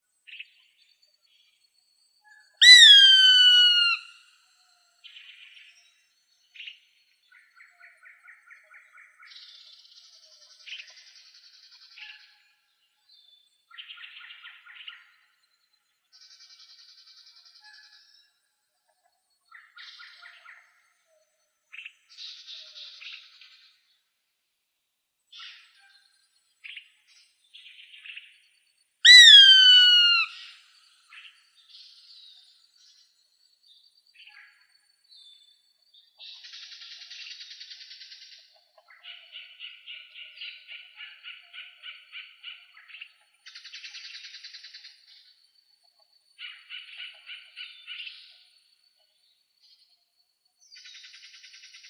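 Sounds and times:
birds of prey calling: 0:02.6 - 0:04.1, 0:29.1 - 0:30.6.

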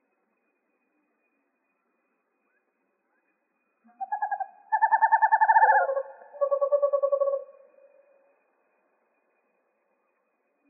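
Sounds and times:
western screech owl giving rapid tremulous hooting trills in Arizona: 0:03.8 - 0:08.3.

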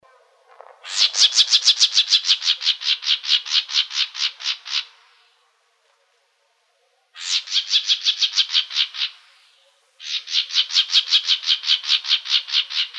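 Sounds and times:
plumbeous vireo calls in Arizona: 0:00.6 - 0:05.2, 0:07.2 - 0:12.9.

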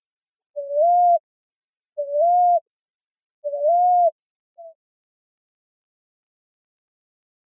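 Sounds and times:
common ground dove cooing in Arizona, United States: 0:00.6 - 0:01.2, 0:02.0 - 0:02.6, 0:03.4 - 0:04.8.

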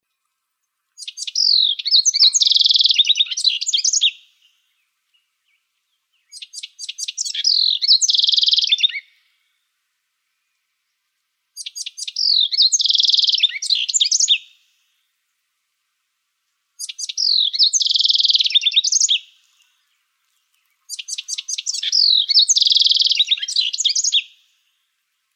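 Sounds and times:
house wren song in Arizona: 0:01.0 - 0:09.4, 0:11.6 - 0:14.9, 0:16.8 - 0:25.3.

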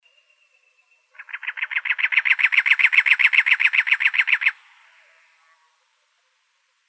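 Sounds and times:
cactus wren rasping chatter in Arizona: 0:01.1 - 0:04.6.

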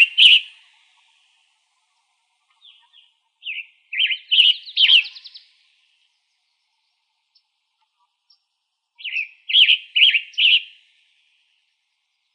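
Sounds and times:
Western tanager singing hoarse burry short phrases in Arizona: 0:00.0 - 0:00.6, 0:02.5 - 0:05.6, 0:09.0 - 0:10.8.

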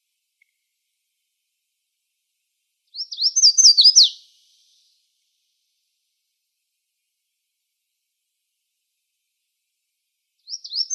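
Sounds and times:
red-faced warbler singing in Arizona: 0:02.9 - 0:04.3, 0:10.5 - 0:10.9.

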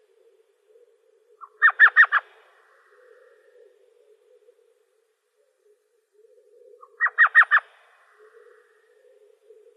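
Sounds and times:
Elf Owl yelping in Arizona: 0:01.4 - 0:02.3, 0:06.7 - 0:08.6.

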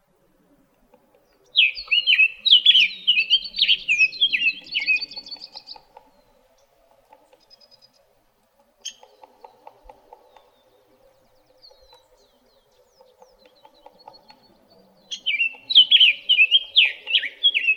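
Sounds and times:
summer tanager singing in Arizona: 0:01.2 - 0:06.7, 0:10.3 - 0:17.7.

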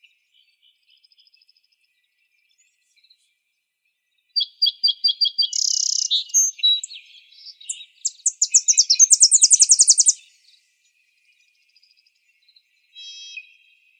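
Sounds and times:
Tennessee Warbler singing: 0:00.0 - 0:13.9.

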